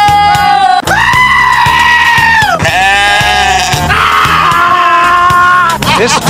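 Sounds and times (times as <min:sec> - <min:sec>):
steady rhythmic beat: 0:00.0 - 0:06.2
goat bleating: 0:02.6 - 0:04.0.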